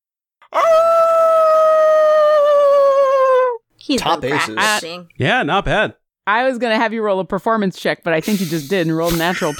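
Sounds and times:
speech: 0.4 - 1.0, 3.9 - 9.5
person imitating a wolf howl: 0.5 - 3.6.

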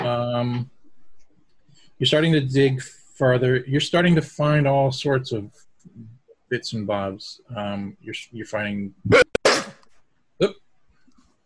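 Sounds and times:
speech: 0.5 - 0.8, 2.0 - 9.3, 10.4 - 10.6
person sneezing: 9.1 - 9.8.

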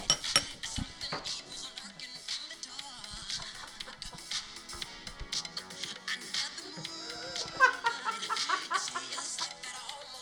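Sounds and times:
glass and tableware clinking in a toast: 0.0 - 1.3
tableware clatter: 0.0 - 1.3
small group laughing softly: 3.0 - 5.3, 6.6 - 10.1.

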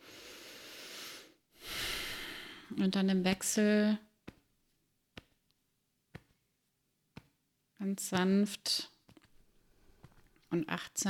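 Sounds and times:
deep breathing with eyes closed during a calming exercise: 0.0 - 2.7
speech: 2.7 - 4.1, 7.9 - 8.9, 10.5 - 11.0.

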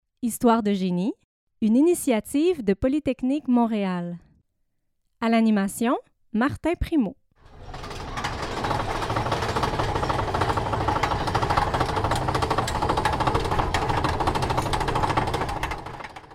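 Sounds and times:
speech: 0.2 - 4.3, 5.2 - 7.2
roller coaster rattling on its track: 7.4 - 16.3.

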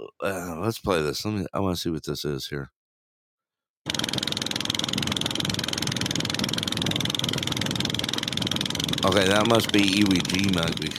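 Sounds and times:
speech: 0.2 - 2.8, 9.1 - 10.9
boat motor droning off Iwo Jima Japan: 3.9 - 10.9.

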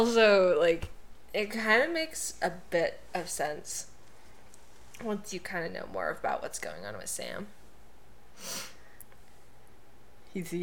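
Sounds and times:
speech: 0.0 - 3.9, 5.0 - 7.6, 8.4 - 8.7, 10.3 - 10.6
person sniffing sharply before a sneeze: 8.4 - 8.8.

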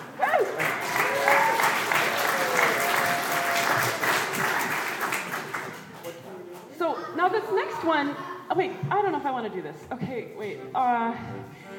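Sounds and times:
audience applause: 0.0 - 5.8
speech: 8.0 - 11.7.

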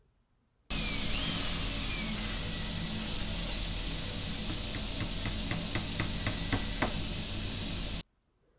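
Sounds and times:
power tools running in a garage: 0.7 - 8.0
rhythmic knocks or taps: 0.7 - 8.0.

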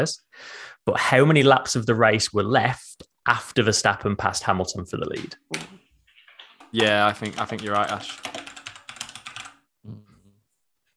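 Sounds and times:
speech: 0.0 - 5.8, 6.7 - 8.3, 9.8 - 10.0
typing on a computer keyboard: 5.6 - 9.6.

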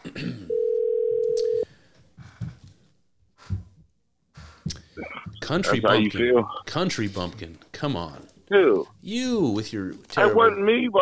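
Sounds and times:
loud steady telephone tone: 0.5 - 1.6
speech: 5.5 - 11.0.

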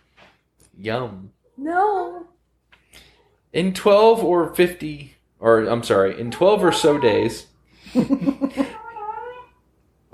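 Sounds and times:
speech: 0.8 - 2.3, 3.5 - 8.6
territorial pet cat yowling: 6.1 - 7.5, 8.6 - 9.6.

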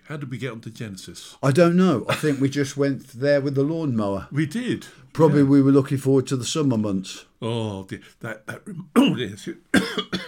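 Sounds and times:
speech: 0.1 - 10.2
person coughing after a crumb went down the wrong way: 9.7 - 10.2.

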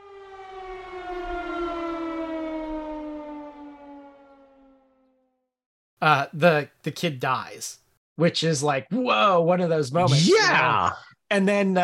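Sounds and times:
civil-defense-style siren wail used as a spoiler-alert sound effect: 0.0 - 5.6
speech: 6.0 - 11.8.

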